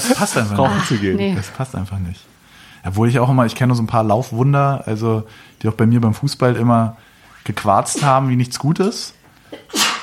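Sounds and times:
speech: 0:00.1 - 0:09.9
person sneezing: 0:09.5 - 0:10.0.

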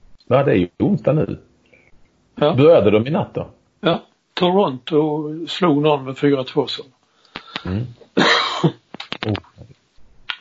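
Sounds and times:
speech: 0:00.3 - 0:01.5, 0:02.4 - 0:07.0, 0:07.6 - 0:09.8
harsh noisy cough: 0:07.7 - 0:08.8.

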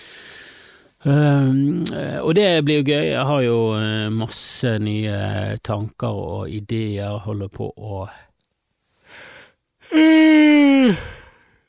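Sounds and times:
speech: 0:01.0 - 0:08.3, 0:09.9 - 0:11.2
person yawning: 0:09.8 - 0:11.5.

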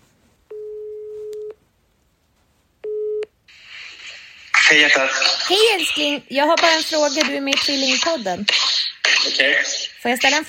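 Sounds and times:
telephone ringing tone while placing a call: 0:00.5 - 0:01.6
speech: 0:04.7 - 0:10.4.

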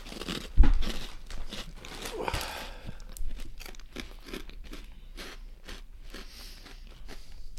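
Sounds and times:
person crunching and chewing a jalapeno snack: 0:00.0 - 0:07.5.

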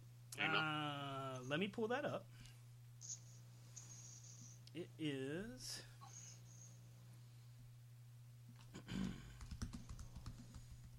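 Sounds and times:
low steady hum: 0:00.0 - 0:10.9
speech: 0:00.4 - 0:02.4, 0:04.7 - 0:05.9
typing on a computer keyboard: 0:09.3 - 0:10.9.

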